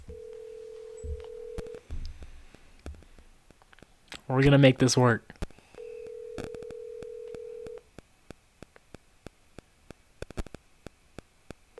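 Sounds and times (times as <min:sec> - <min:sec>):
steady low telephone tone: 0:00.1 - 0:01.8, 0:05.8 - 0:07.8
speech: 0:04.3 - 0:05.3.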